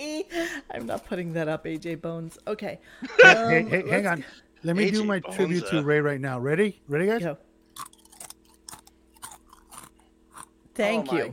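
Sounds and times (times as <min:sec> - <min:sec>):
speech: 0:00.3 - 0:07.9, 0:10.8 - 0:11.3
laughter: 0:03.0 - 0:04.3
loud crunchy chewing of food at the microphone: 0:07.7 - 0:10.8.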